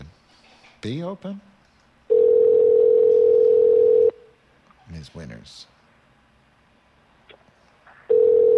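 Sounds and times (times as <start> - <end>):
speech: 0.8 - 1.5, 4.9 - 5.8
telephone ringback tone: 2.1 - 4.2, 8.1 - 8.5.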